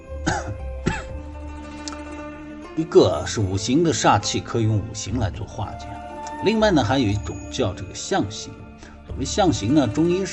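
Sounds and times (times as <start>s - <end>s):
person lecturing on feng shui coughing: 0.2s - 1.2s
speech: 2.8s - 8.6s, 9.2s - 10.3s.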